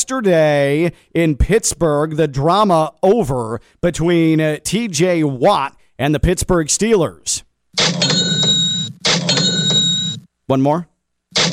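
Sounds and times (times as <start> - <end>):
speech: 0.1 - 8.3, 10.5 - 11.4
cash register bell ding: 7.8 - 10.2.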